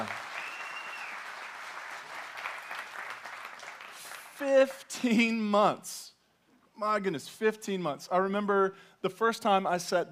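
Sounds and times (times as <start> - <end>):
large audience applauding at a church service: 0.0 - 4.3
speech: 4.4 - 6.1, 6.8 - 10.1.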